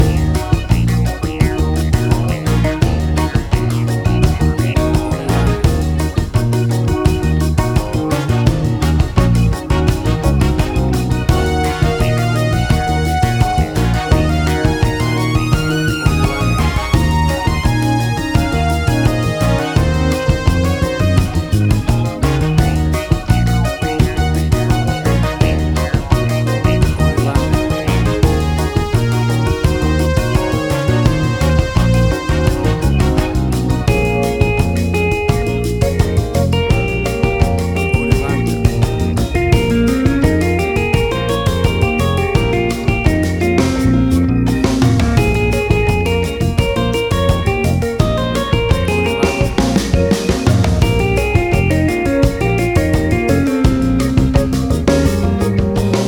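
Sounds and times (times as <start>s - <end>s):
acid jazz latin fusion music: 0.0s - 56.0s.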